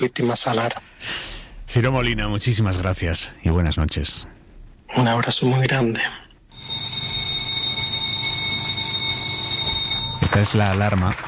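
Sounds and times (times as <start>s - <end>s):
speech: 0.0s - 6.8s, 10.4s - 11.2s
high-pitched electronic newsroom meeting alarm tone: 6.5s - 10.7s.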